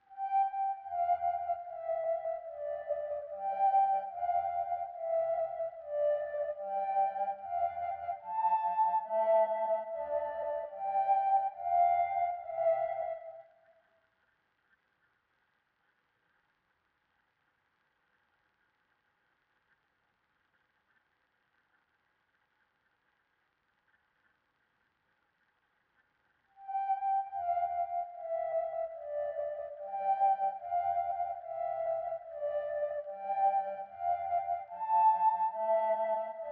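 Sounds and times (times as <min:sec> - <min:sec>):
145 BPM D minor counter lead synth melody loop: 0:00.2 - 0:13.4, 0:26.6 - 0:36.4.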